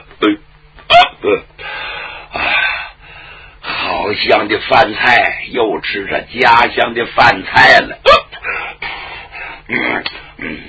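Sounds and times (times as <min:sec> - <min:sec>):
storyteller imitating hiccups after overeating: 0:00.0 - 0:01.5, 0:08.0 - 0:08.4, 0:09.7 - 0:10.6
speech: 0:04.2 - 0:08.2.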